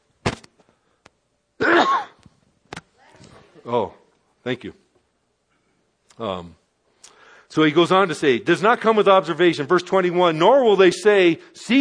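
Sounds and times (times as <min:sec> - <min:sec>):
person sneezing: 0:01.6 - 0:02.2
speech: 0:03.6 - 0:04.8, 0:06.2 - 0:06.6, 0:07.5 - 0:11.7.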